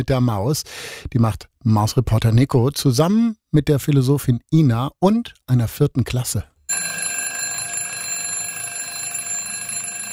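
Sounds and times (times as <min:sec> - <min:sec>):
speech: 0:00.0 - 0:07.0
alarm clock ringing with electronic buzzing: 0:06.7 - 0:10.1.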